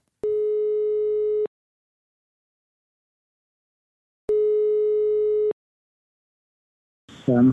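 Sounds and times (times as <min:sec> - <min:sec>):
telephone ringback tone from a call to a real estate broker: 0:00.2 - 0:01.5, 0:04.3 - 0:05.6.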